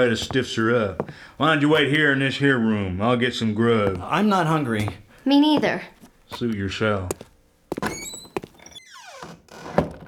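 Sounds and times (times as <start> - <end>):
speech: 0.0 - 7.3
door creaking with a downward squeal: 7.7 - 10.0.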